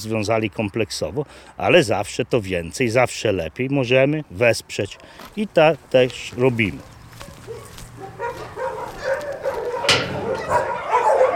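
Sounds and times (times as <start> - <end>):
speech: 0.0 - 6.9
paralysed dog in a wheelchair barking: 6.8 - 11.3.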